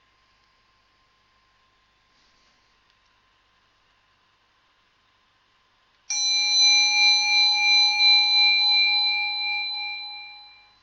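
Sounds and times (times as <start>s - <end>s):
meditation bell ringing: 6.1s - 10.8s.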